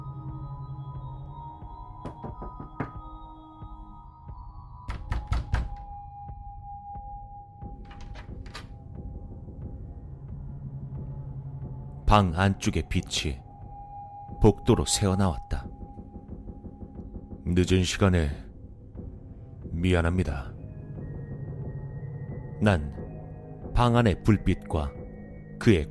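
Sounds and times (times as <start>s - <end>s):
knocking on a door: 2.0s - 3.3s, 4.9s - 6.0s
speech: 2.4s - 2.8s, 12.1s - 13.4s, 14.4s - 15.7s, 17.5s - 18.4s, 19.8s - 20.5s, 22.6s - 22.9s, 23.8s - 25.0s, 25.6s - 25.8s.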